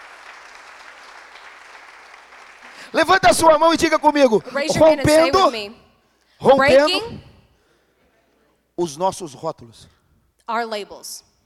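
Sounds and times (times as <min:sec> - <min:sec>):
church congregation clapping hands in praise: 0:00.0 - 0:04.6
speech: 0:02.9 - 0:05.8, 0:06.4 - 0:07.3, 0:08.8 - 0:11.3.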